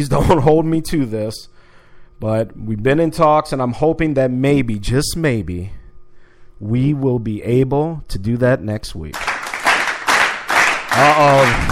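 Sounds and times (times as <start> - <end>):
speech: 0.0 - 1.6, 2.2 - 5.8, 6.6 - 9.3, 10.9 - 11.7
crowd cheering: 9.2 - 11.7
person letting out a long cheering whoop: 10.9 - 11.7.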